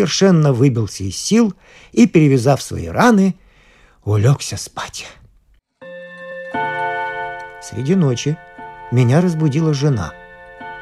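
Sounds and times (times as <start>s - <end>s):
speech: 0.0s - 3.4s, 4.0s - 5.2s, 7.6s - 10.2s
clock striking with bright ringing chimes: 6.0s - 10.8s.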